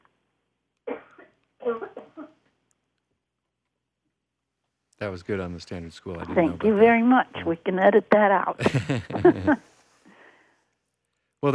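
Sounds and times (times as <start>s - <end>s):
heavy chesty cough from a cold: 0.9s - 2.4s, 8.6s - 9.6s
speech: 5.0s - 9.7s
laughter: 6.0s - 6.8s, 8.6s - 9.7s.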